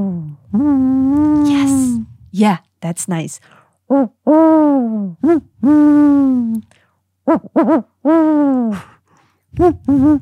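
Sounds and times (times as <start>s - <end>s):
person imitating owl hoots with tongue curved back: 0.0s - 2.3s, 3.9s - 6.7s, 7.3s - 10.2s
speech: 0.6s - 1.2s, 2.3s - 8.9s, 9.5s - 10.2s.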